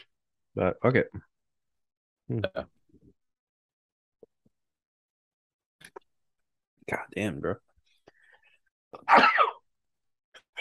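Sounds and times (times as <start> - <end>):
speech: 0.6 - 1.3, 2.3 - 2.7, 6.9 - 7.6, 8.9 - 9.3
person sneezing: 9.0 - 9.6.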